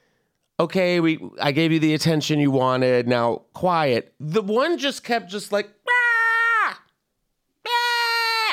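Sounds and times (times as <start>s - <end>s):
speech: 0.6s - 5.8s
voice imitating a woman screaming: 5.8s - 6.9s, 7.6s - 8.5s.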